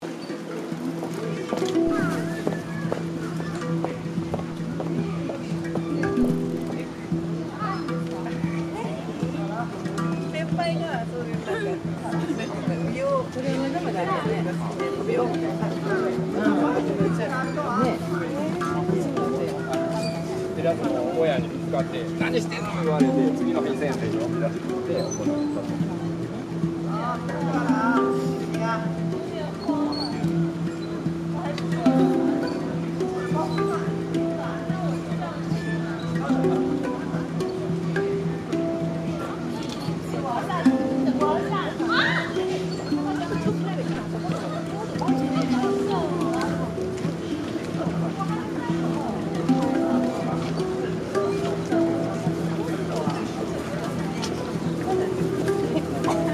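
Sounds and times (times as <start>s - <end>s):
street music in Kyoto: 0.0s - 56.3s.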